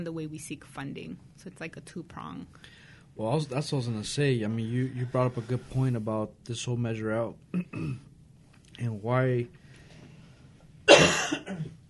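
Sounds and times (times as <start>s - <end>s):
speech: 0.0s - 8.1s, 8.8s - 9.6s
single forceful cough: 7.5s - 8.1s, 10.9s - 11.8s.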